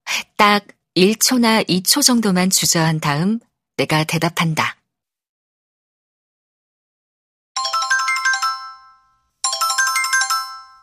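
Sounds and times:
speech: 0:00.4 - 0:04.8
melodic phone ringtone: 0:07.6 - 0:10.8.

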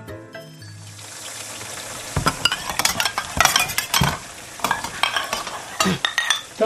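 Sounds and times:
steady rush of running water: 0:00.4 - 0:06.6
dishes and utensils clinking while being washed: 0:02.1 - 0:06.6.

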